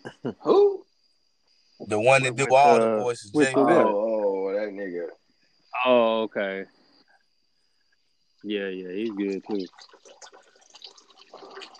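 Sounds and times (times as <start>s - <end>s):
speech: 0.2s - 0.8s, 1.9s - 4.0s, 5.8s - 6.8s, 8.4s - 10.4s
water pouring into a container: 9.0s - 11.7s.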